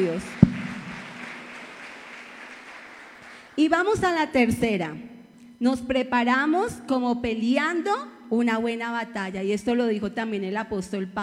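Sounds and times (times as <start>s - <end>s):
speech: 0.0s - 0.4s, 3.6s - 11.2s
congregation applause at a church service: 0.0s - 3.6s.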